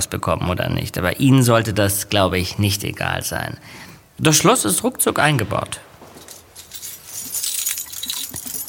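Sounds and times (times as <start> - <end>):
speech: 0.0 - 5.9
bunch of apartment keys jangling: 6.1 - 8.6.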